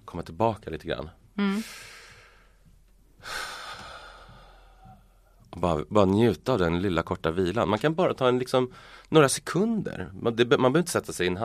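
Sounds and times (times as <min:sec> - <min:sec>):
speech: 0:00.1 - 0:02.0, 0:05.6 - 0:11.4
slow deep breath in and out: 0:01.6 - 0:05.4, 0:08.7 - 0:09.1.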